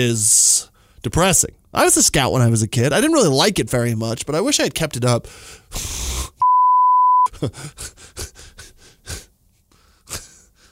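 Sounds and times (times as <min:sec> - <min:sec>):
speech: 0:00.0 - 0:06.2, 0:07.4 - 0:08.3
censor bleep: 0:06.4 - 0:07.3.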